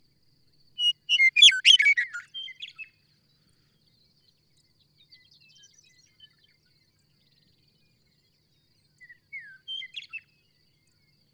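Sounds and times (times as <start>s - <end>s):
bird singing chirps and trills: 0.8s - 2.6s.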